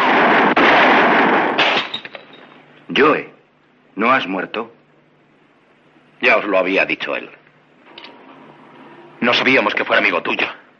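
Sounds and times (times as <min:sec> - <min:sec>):
gunshot in a Western film scene: 0:00.0 - 0:02.2
speech: 0:03.0 - 0:03.3, 0:04.0 - 0:04.8, 0:06.2 - 0:07.4, 0:09.2 - 0:10.6.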